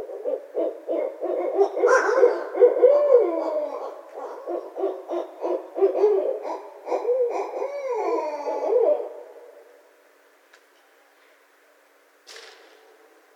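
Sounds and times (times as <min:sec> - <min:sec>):
Barred owl hooting and caterwauling with rolling hoots: 0:00.0 - 0:09.8.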